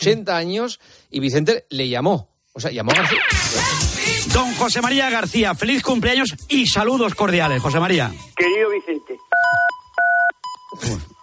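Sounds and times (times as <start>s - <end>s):
speech: 0.0s - 9.1s
electronic beeps on a telephone line: 8.4s - 11.2s.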